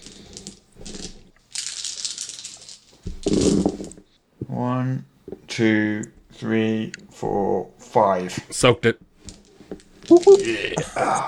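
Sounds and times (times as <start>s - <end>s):
handful of 13 dice clattering across a hard surface: 0.0s - 4.0s, 9.3s - 10.8s
speech: 4.8s - 9.1s, 10.1s - 11.2s.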